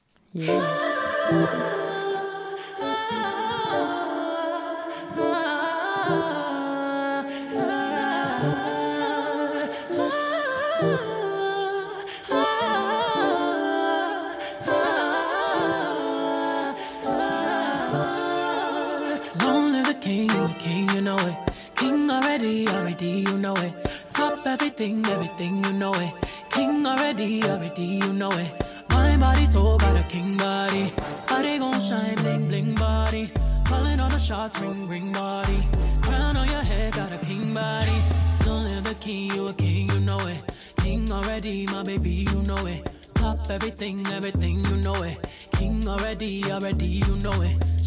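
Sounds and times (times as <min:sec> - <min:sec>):
speech: 0:00.3 - 0:01.7, 0:24.8 - 0:26.2, 0:27.1 - 0:47.7
pop song with sung vocal melody over sustained chords: 0:00.3 - 0:47.8
sharper percussive beats: 0:38.4 - 0:44.2, 0:45.0 - 0:47.4.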